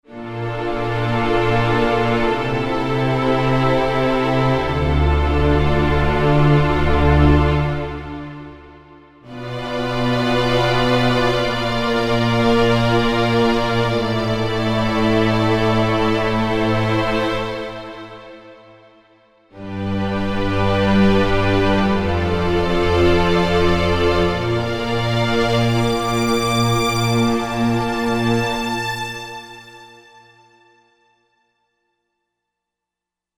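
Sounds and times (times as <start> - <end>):
string instruments: 0.0 - 31.2.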